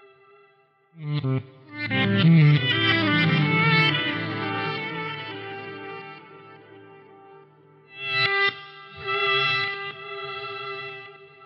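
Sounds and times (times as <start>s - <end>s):
ambient electric guitar solo: 1.0s - 9.6s.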